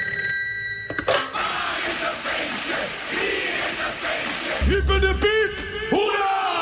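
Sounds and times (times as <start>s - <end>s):
telephone ringing tone of an outgoing call: 0.0s - 1.4s
crowd noise of people celebrating a birthday: 1.3s - 6.6s.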